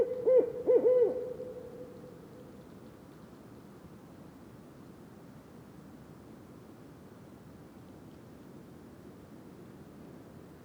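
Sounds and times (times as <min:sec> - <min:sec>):
Barred Owl hooting in Mont-Tremblant National Park: 0:00.0 - 0:01.3.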